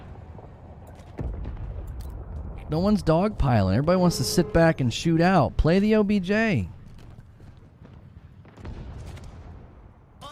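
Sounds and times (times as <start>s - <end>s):
orbital ordnance bombardment in a video game: 0.0s - 5.1s, 7.7s - 10.2s
speech: 2.7s - 6.8s.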